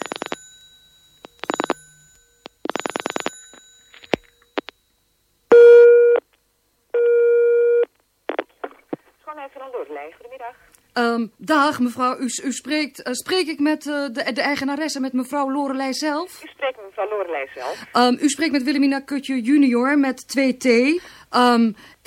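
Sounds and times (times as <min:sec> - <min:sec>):
telephone busy signal: 0:05.5 - 0:06.2, 0:07.0 - 0:07.9
speech: 0:09.4 - 0:22.0.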